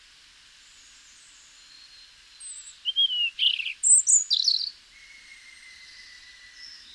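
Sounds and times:
European robin Erithacus rubecula song phrase: 2.4 - 6.9.

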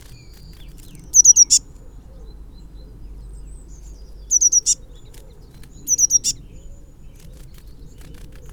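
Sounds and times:
Eurasian blue tit Cyanistes caeruleus giving high thin triple notes: 0.0 - 2.4, 3.0 - 8.5.

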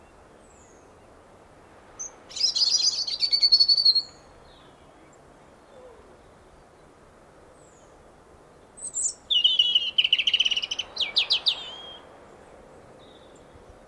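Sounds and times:
European robin Erithacus rubecula song with warbled phrases and trills: 0.0 - 6.9, 8.6 - 13.8.

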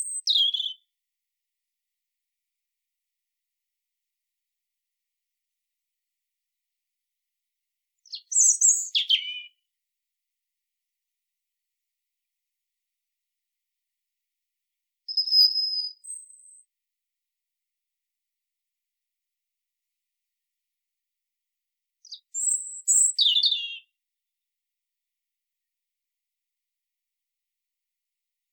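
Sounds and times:
European robin twittering and whistling: 0.0 - 0.8, 8.1 - 9.5, 15.1 - 16.6, 22.1 - 23.9.

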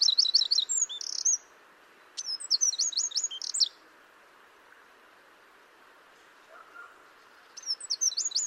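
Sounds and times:
Eurasian wren Troglodytes troglodytes trilling: 0.0 - 1.5, 2.2 - 3.8, 6.8 - 8.4
light hiss: 0.0 - 8.4.

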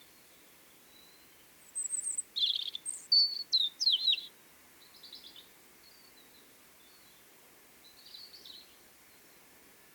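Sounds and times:
faint background hiss: 0.0 - 9.9
European robin song, Erithacus rubecula: 1.8 - 4.3.

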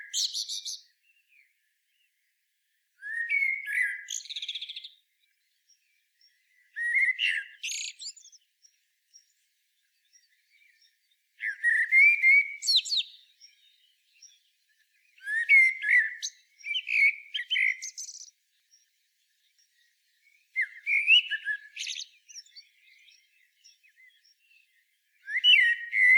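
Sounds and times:
common blackbird Turdus merula singing: 0.0 - 2.1, 3.0 - 26.1.

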